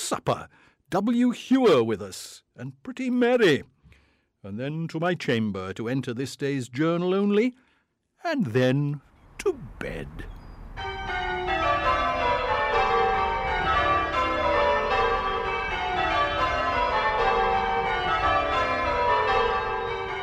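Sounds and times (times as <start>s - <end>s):
speech: 0.1s - 3.8s, 4.4s - 11.2s
several church bells pealing: 10.7s - 20.2s.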